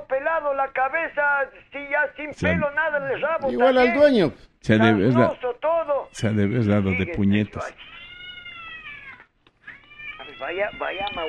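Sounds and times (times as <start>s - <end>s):
speech: 0.2s - 7.9s, 10.4s - 11.2s
cat meowing: 7.0s - 11.2s
cat yowling: 7.7s - 11.2s.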